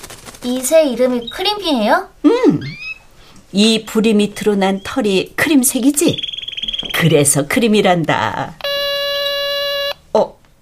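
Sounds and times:
speech: 0.4 - 2.8, 3.5 - 8.6, 10.1 - 10.4
loud steady electronic intercom buzzer: 8.6 - 10.0.

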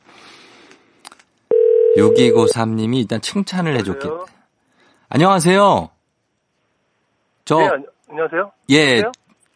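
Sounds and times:
telephone ringback tone: 1.5 - 2.5
soft phone line hiss: 1.5 - 2.6
speech: 2.0 - 4.4, 5.1 - 6.0, 7.5 - 9.2.

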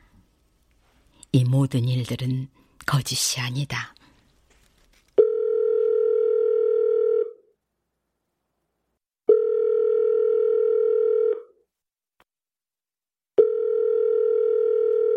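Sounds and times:
speech: 1.3 - 4.0
electronic ringback tones on an outgoing phone call: 5.2 - 7.4, 9.3 - 11.5, 13.4 - 15.1.

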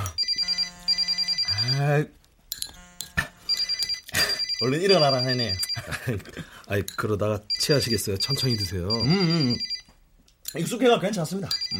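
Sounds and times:
phone ringing with a repeating electronic trill: 0.0 - 2.0, 2.6 - 6.3, 7.0 - 9.9, 11.4 - 11.7
speech: 1.8 - 2.2, 4.6 - 9.7, 10.5 - 11.7
laughter: 5.8 - 6.6.

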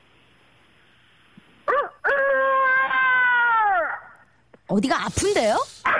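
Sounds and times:
man imitating a Uijeongbu rooster crowing with his voice: 1.7 - 4.2
speech: 4.7 - 5.9.

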